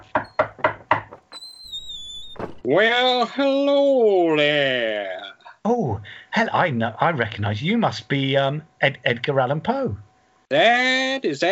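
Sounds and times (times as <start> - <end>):
loud knocks on a door: 0.0 - 1.3
steady high-pitched squeak or whistle-like tone: 1.2 - 2.7
speech: 2.6 - 11.4.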